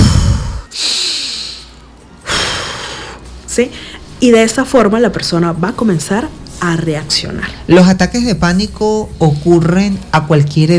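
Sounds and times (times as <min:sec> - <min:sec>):
person demonstrating calm breathing: 0:00.0 - 0:04.1
speech: 0:03.6 - 0:10.7.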